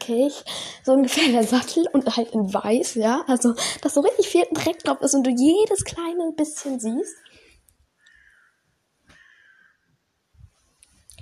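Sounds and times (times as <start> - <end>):
speech: 0.1 - 7.3
ravens cawing with hoarse corvid calls: 8.0 - 9.9.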